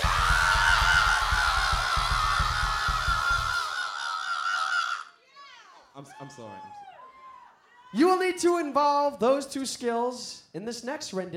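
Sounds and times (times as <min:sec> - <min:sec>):
low rhythmic thumping: 0:00.0 - 0:03.7
crowd screaming together: 0:00.0 - 0:08.0
speech: 0:06.2 - 0:06.8, 0:07.9 - 0:11.3.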